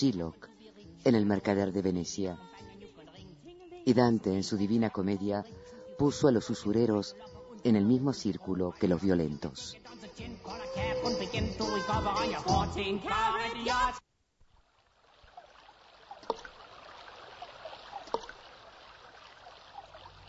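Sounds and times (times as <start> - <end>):
speech: 0.0 - 2.6, 3.8 - 14.1
music: 0.0 - 14.0
brief water splashes: 14.6 - 20.2
flowing stream babbling: 14.7 - 20.2.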